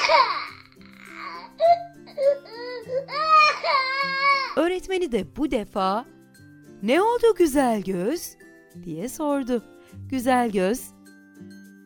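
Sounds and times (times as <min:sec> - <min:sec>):
young child crying with high wavering wails: 0:00.0 - 0:04.6
speech: 0:04.6 - 0:06.2, 0:06.8 - 0:11.6.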